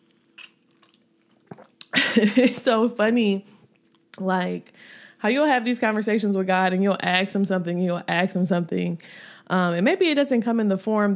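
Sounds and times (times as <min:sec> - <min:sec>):
person sipping a drink: 0:00.4 - 0:01.9
speech: 0:02.2 - 0:03.5, 0:04.2 - 0:11.1.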